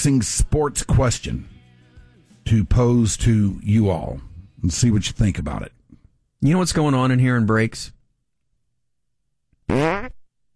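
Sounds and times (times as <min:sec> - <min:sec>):
speech: 0:00.0 - 0:01.6, 0:02.4 - 0:05.8, 0:06.4 - 0:08.0, 0:09.7 - 0:10.1
fart sound effect played from a phone app: 0:09.7 - 0:10.3.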